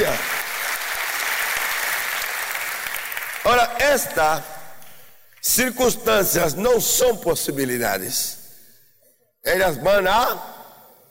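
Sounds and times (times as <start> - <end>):
crowd applauding in praise of God: 0.0 - 4.1
speech: 3.8 - 4.5, 5.4 - 8.4, 9.4 - 10.5.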